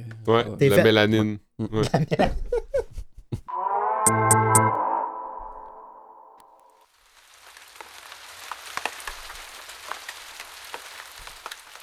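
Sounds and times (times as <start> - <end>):
speech: 0.2 - 2.7
laughter: 1.6 - 3.5
resonant ringing tone: 3.5 - 6.5
heavy rain spattering on a surface: 6.9 - 11.8.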